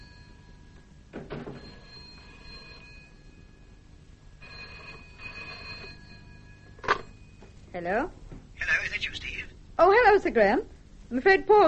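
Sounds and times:
telephone bell ringing: 0.0 - 7.6
speech: 7.8 - 8.2, 9.8 - 11.6.

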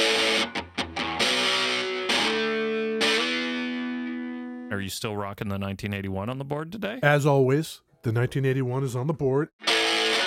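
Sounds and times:
electric guitar through a Rat distortion pedal playing chords: 0.0 - 4.7, 9.6 - 10.2
speech: 4.7 - 9.7.

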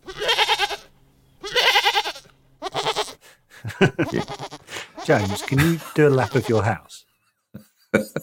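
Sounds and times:
goat bleating as an inserted sound effect: 0.0 - 3.2, 3.8 - 6.9
laughter: 3.5 - 6.8, 7.6 - 8.2
speech: 3.8 - 4.4, 5.1 - 6.9.

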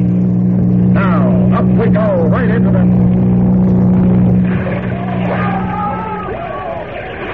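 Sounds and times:
speedboat engine roaring past: 0.0 - 7.3
faint shouts: 5.0 - 7.3.

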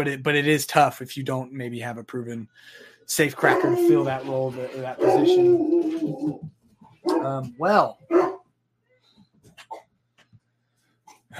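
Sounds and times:
speech: 0.0 - 8.3
dog barking loudly: 7.0 - 7.4, 8.1 - 8.4.

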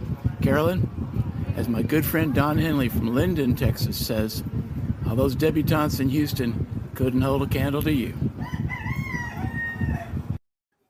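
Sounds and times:
dense rumbling background: 0.0 - 10.4
speech: 0.5 - 1.0, 1.6 - 8.3
rooster crowing: 8.4 - 10.3.

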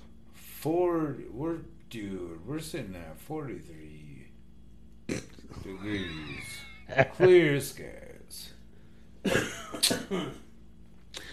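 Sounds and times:
speech: 0.6 - 4.2, 5.1 - 8.5, 9.2 - 10.4
laughter: 5.5 - 7.6
harsh wet coughs: 9.2 - 10.4.

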